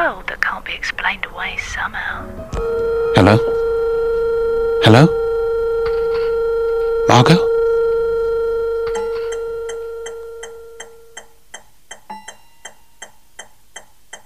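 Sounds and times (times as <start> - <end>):
speech: 0.2 - 3.6, 4.8 - 5.2, 7.2 - 7.5
steady electronic tone: 1.3 - 11.2
clock ticking: 9.3 - 14.2.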